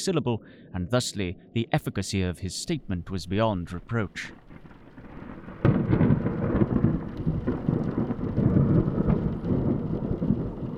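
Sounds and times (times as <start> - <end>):
speech: 0.0 - 4.4
thunder crack: 3.7 - 10.7
heavy rain lashing against windows: 3.8 - 10.7.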